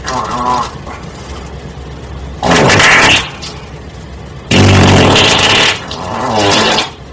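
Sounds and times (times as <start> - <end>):
loud fart: 2.4 - 3.3, 4.5 - 7.0.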